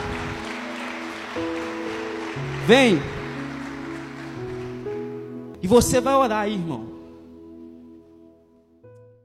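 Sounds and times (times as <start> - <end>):
crowd applauding: 0.0 - 5.3
sustained keyboard chords: 0.0 - 9.1
speech: 2.7 - 3.2, 5.6 - 6.9.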